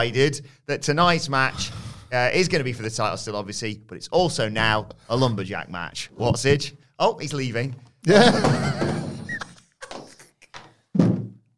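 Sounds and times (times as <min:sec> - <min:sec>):
speech: 0:00.0 - 0:09.1
laughter: 0:08.1 - 0:10.4
thrown chair clattering down: 0:08.3 - 0:09.4, 0:10.6 - 0:11.4
chair scraping squeak: 0:08.9 - 0:10.3.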